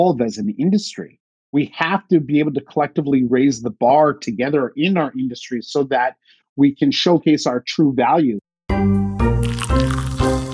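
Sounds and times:
speech: 0.0s - 9.0s
fresh cup of coffee being poured: 9.4s - 10.5s.

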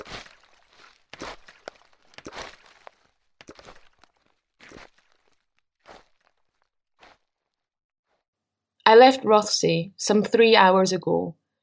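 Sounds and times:
footsteps crunching on a trail: 0.0s - 8.2s
speech: 8.9s - 11.4s.

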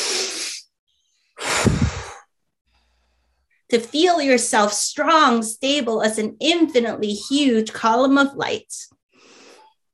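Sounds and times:
deep breaths during a guided grounding meditation: 0.0s - 3.6s
speech: 3.7s - 9.0s.

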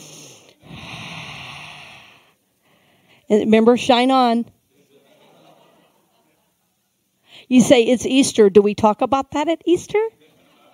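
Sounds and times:
deep breath: 0.0s - 3.3s, 7.2s - 7.5s
speech: 3.3s - 4.6s, 7.5s - 10.2s
laughter: 4.8s - 6.8s, 10.2s - 10.7s.

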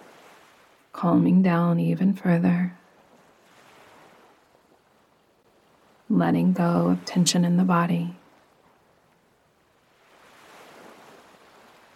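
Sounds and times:
ocean surf: 0.0s - 1.0s, 3.0s - 11.9s
speech: 1.0s - 2.8s, 6.1s - 8.2s.

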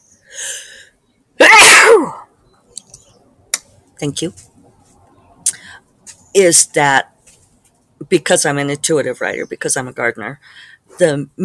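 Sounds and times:
person sneezing: 1.4s - 2.2s
speech: 4.0s - 4.5s, 6.4s - 7.1s, 8.0s - 11.4s.

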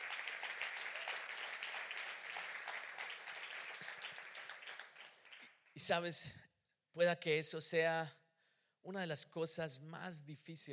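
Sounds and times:
crowd applauding: 0.0s - 5.7s
speech: 5.8s - 6.4s, 7.0s - 8.2s, 8.8s - 10.7s.

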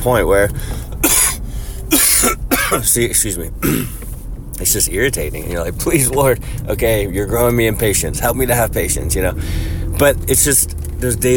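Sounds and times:
speech: 0.0s - 0.9s, 1.9s - 11.3s
person coughing hoarsely after an illness: 1.0s - 2.9s, 3.6s - 4.0s.

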